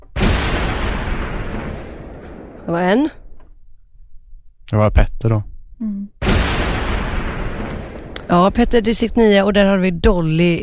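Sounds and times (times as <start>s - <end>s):
cannon shot: 0.0s - 3.3s, 6.2s - 9.2s
speech: 2.7s - 3.2s, 4.7s - 6.2s, 8.3s - 10.6s.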